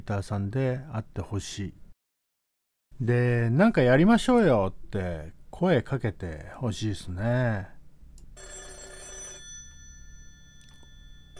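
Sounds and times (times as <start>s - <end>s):
speech: 0.0s - 1.8s, 3.0s - 7.7s
telephone bell ringing: 8.4s - 11.3s.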